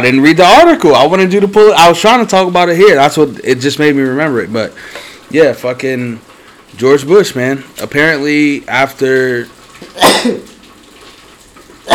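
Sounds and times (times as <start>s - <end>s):
speech: 0.0s - 10.5s
sneeze: 10.0s - 10.6s.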